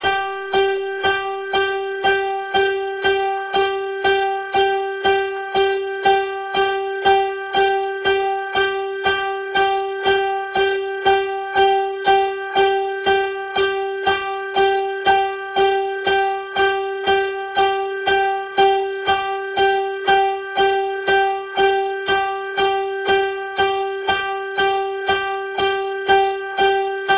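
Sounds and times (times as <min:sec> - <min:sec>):
piano: 0:00.0 - 0:27.1.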